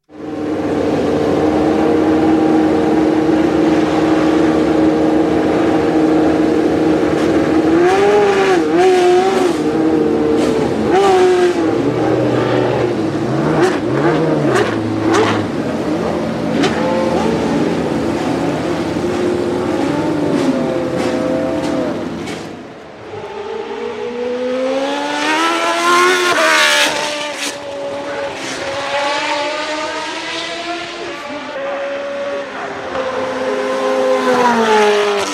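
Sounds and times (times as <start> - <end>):
March 881 racing car with 3.5-litre Judd V8 engine revving: 0.1 - 35.3.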